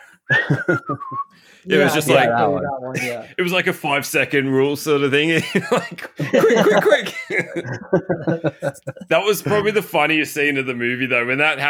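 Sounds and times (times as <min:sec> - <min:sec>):
laughter: 0:00.3 - 0:01.2, 0:01.8 - 0:03.3, 0:05.3 - 0:10.0
person whistling a cartoon-style tune: 0:00.3 - 0:01.4
speech: 0:00.5 - 0:11.6
choppy rhythmic pulses of sound: 0:06.2 - 0:09.7.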